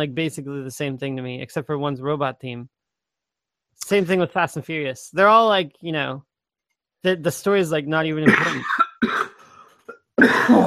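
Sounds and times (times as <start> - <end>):
speech: 0.0 - 2.8, 3.8 - 6.3, 7.0 - 9.1, 10.2 - 10.6
loud harsh raspy cough: 8.2 - 10.6
throat clearing: 8.3 - 10.6.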